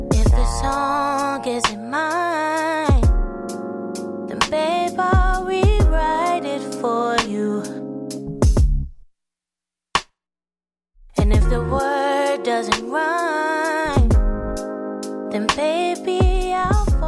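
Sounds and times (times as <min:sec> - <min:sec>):
soul song with female singer and warm instrumental bed: 0:00.1 - 0:03.2, 0:04.3 - 0:08.0, 0:11.2 - 0:14.5, 0:15.3 - 0:17.0.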